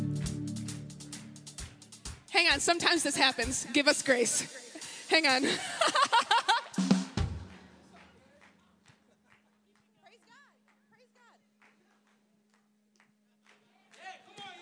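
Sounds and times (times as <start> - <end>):
audience clapping: 0.2 - 2.0, 7.2 - 14.6
speech: 2.4 - 6.0
laughter: 3.2 - 6.8.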